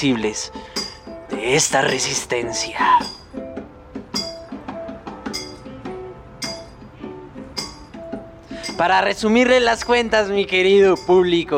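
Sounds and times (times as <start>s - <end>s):
speech: 0.0s - 0.8s, 1.4s - 3.2s, 8.8s - 11.5s
work rhythm of ringing metallic clinks: 0.6s - 1.2s, 2.9s - 3.4s, 4.1s - 5.7s, 6.4s - 6.9s, 7.5s - 8.9s, 9.7s - 11.5s.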